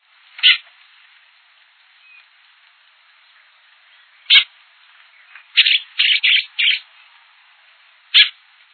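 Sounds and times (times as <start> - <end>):
bico-de-veludo bird calling: 0.4 - 0.7, 3.8 - 6.9, 8.1 - 8.4.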